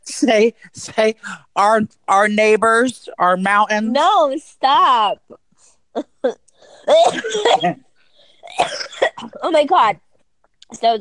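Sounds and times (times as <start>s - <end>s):
speech: 0.0s - 5.4s, 6.0s - 7.9s, 8.5s - 10.0s, 10.7s - 10.9s
person coughing: 6.8s - 7.8s, 8.4s - 9.5s.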